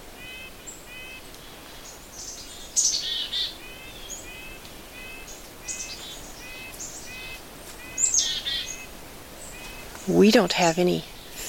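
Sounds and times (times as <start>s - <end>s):
red-breasted nuthatch calls: 0.2s - 11.4s
sharper chirps from another bird: 0.2s - 11.4s
speech: 10.1s - 11.4s.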